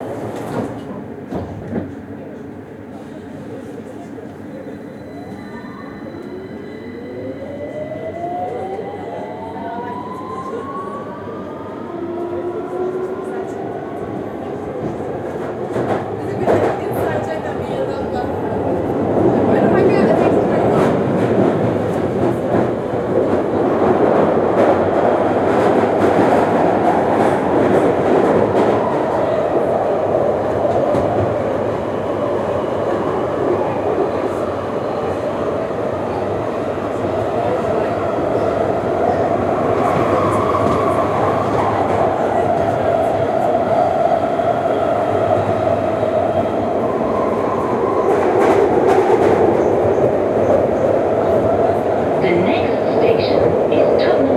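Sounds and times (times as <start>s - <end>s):
underground metro train on tracks: 0.0s - 54.3s
underground metro train brake squeal: 4.6s - 7.3s.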